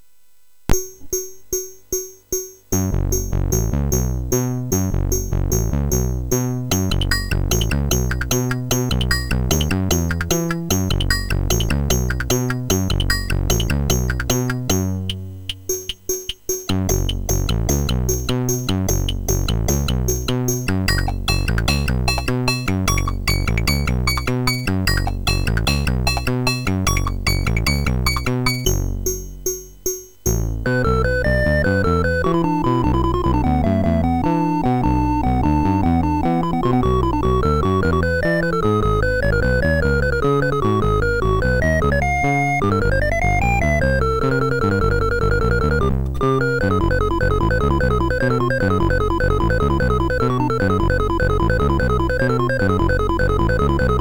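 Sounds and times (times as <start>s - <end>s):
chiptune music demo on a sound chip: 0.7s - 53.9s.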